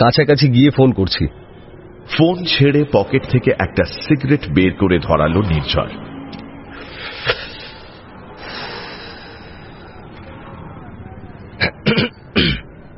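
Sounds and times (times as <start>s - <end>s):
speech: 0.0s - 1.4s, 2.1s - 6.1s
throat clearing: 11.6s - 12.7s.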